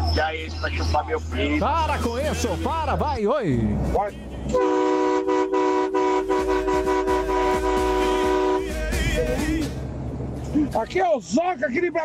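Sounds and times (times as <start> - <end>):
speech: 0.2 - 4.9, 10.8 - 12.0
truck horn blaring: 3.8 - 9.8.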